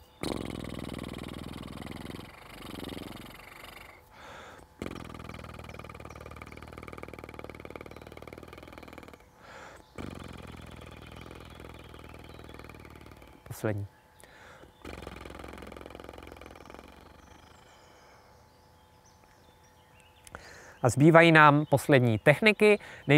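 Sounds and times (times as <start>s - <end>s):
slow continuous lip buzzing exercise: 0.0s - 18.4s
short breaths: 3.9s - 4.8s, 9.4s - 10.0s, 14.2s - 14.8s, 20.3s - 20.8s, 22.8s - 23.1s
speech: 13.6s - 14.0s, 20.8s - 23.1s.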